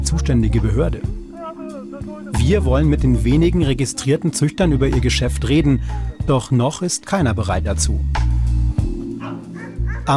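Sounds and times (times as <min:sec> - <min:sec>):
speech: 0:00.1 - 0:01.2, 0:02.3 - 0:08.3
several dogs barking and yipping at a dog rescue shelter in Serbia: 0:09.0 - 0:10.1.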